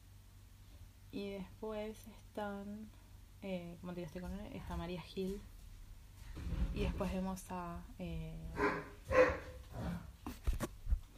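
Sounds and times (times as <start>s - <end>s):
speech: 1.1s - 5.5s, 6.4s - 10.1s
dog barking and yipping playfully: 8.6s - 9.8s.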